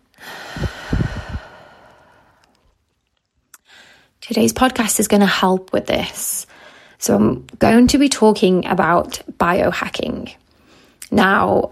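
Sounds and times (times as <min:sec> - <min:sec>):
person exhaling during a guided breathing moment: 0:00.2 - 0:02.5
speech: 0:04.3 - 0:10.4, 0:11.1 - 0:11.7.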